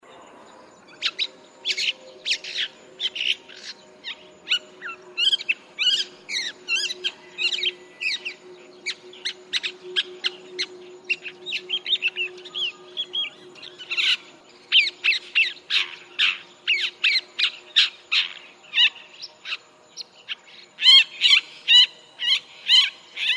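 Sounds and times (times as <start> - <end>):
rufous-backed shrike calling: 0.8 - 23.3.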